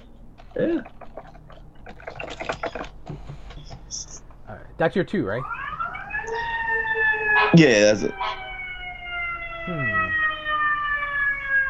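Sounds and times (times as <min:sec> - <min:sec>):
speech: 0:00.6 - 0:01.0, 0:04.8 - 0:05.6, 0:07.6 - 0:08.3
fire truck siren passing outside: 0:05.3 - 0:11.6.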